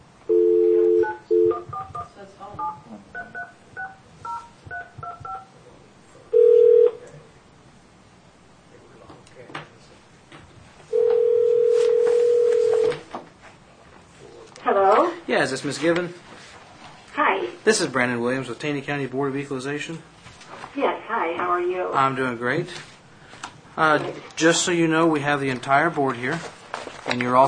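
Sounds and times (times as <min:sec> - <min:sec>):
phone line dial tone: 0:00.3 - 0:05.4, 0:06.4 - 0:07.0, 0:10.9 - 0:13.0
touch-tone keypad beeps dialing a local number: 0:00.8 - 0:05.5
speech: 0:15.4 - 0:16.3, 0:17.6 - 0:20.2, 0:20.8 - 0:22.9, 0:23.8 - 0:27.4.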